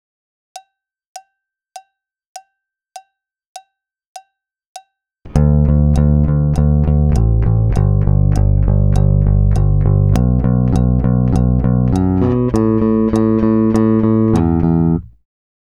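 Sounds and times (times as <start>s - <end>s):
guitar down-picking practice phrase: 5.3s - 15.2s.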